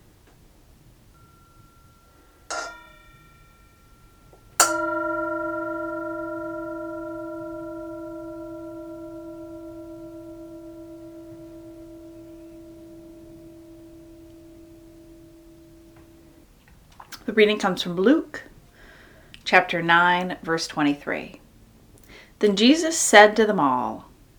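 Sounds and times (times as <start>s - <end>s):
Tibetan singing bowl struck and ringing out: 1.1s - 16.5s
speech: 17.3s - 18.5s, 19.5s - 21.4s, 22.4s - 24.1s.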